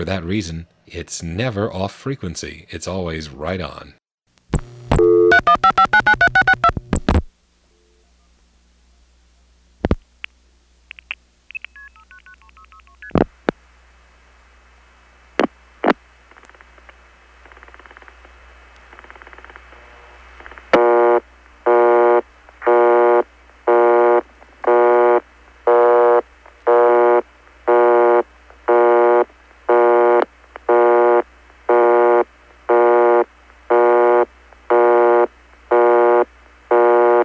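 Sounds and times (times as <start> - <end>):
speech: 0.0 - 4.0
low electrical hum: 0.0 - 37.2
telephone exchange busy tone from tone plant: 20.8 - 37.2.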